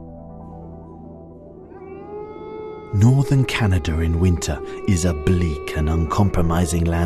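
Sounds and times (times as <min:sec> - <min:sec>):
wolf howling: 0:01.6 - 0:07.0
speech: 0:02.9 - 0:07.0.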